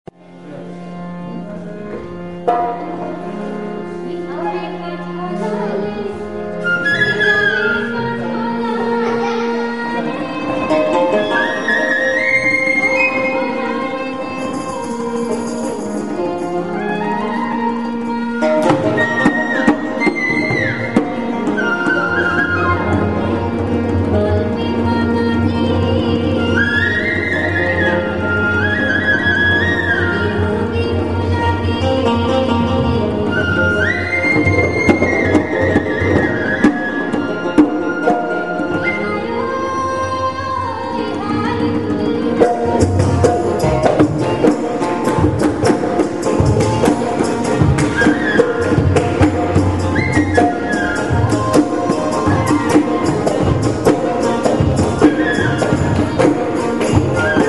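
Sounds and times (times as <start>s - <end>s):
bihu folk tune in India: 0.1s - 57.4s.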